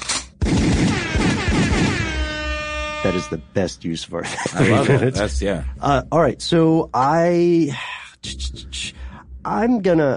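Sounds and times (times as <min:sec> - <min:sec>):
rapid gunfire sound effect: 0:00.4 - 0:02.2
speech: 0:03.0 - 0:10.1
laughter: 0:04.2 - 0:05.6.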